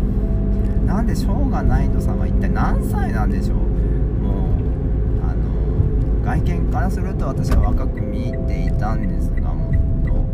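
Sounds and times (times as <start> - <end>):
car engine low-pitched drone: 0.0 - 10.3
speech: 1.0 - 4.4, 6.2 - 9.5.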